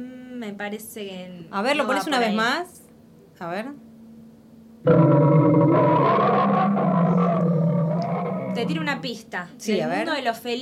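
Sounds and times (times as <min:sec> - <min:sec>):
speech: 0:00.0 - 0:02.8, 0:03.4 - 0:03.9, 0:04.8 - 0:05.4, 0:08.6 - 0:10.6
furious caged lion roaring: 0:04.9 - 0:09.0.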